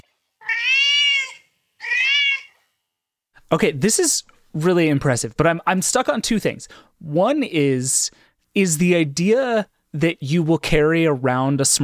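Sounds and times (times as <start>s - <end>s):
cat meowing: 0.4s - 2.6s
speech: 3.5s - 11.8s.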